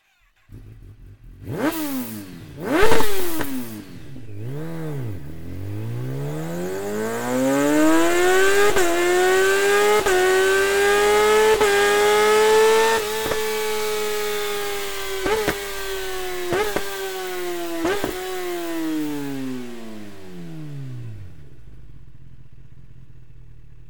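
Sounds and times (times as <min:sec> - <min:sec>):
slip-on exhaust: 0:00.0 - 0:23.8.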